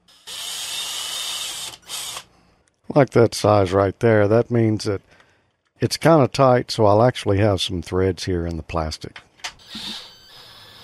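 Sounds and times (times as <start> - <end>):
power drill boring pilot holes in plastic: 0.0 - 2.3, 9.6 - 10.8
speech: 2.9 - 5.2, 5.8 - 10.0.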